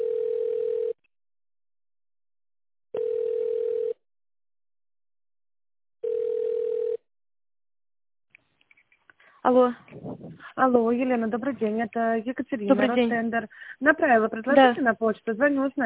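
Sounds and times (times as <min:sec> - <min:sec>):
telephone line tone while a call is being connected: 0:00.0 - 0:01.0, 0:03.0 - 0:04.0, 0:06.0 - 0:07.0
speech: 0:09.5 - 0:15.8.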